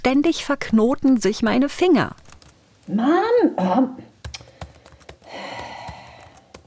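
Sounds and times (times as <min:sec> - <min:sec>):
speech: 0:00.0 - 0:02.2, 0:02.9 - 0:04.1
rapid uneven typing on a computer keyboard: 0:02.1 - 0:02.6, 0:04.2 - 0:06.6.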